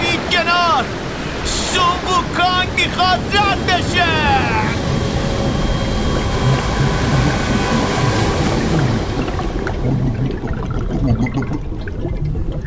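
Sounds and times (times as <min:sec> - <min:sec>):
roar of rushing water as the sea is parted: 0:00.0 - 0:12.6
speech: 0:02.0 - 0:04.6.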